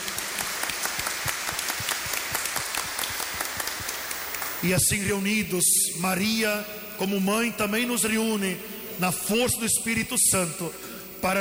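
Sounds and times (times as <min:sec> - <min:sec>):
audience applauding: 0:00.0 - 0:04.7
speech: 0:04.6 - 0:11.3.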